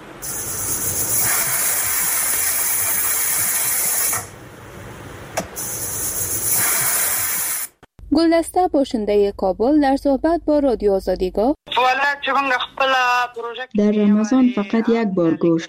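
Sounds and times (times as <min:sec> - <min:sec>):
pressure cooker hissing steam while cooking meat at home in Afghanistan: 0:00.2 - 0:04.3, 0:05.6 - 0:07.8
speech: 0:08.2 - 0:15.6.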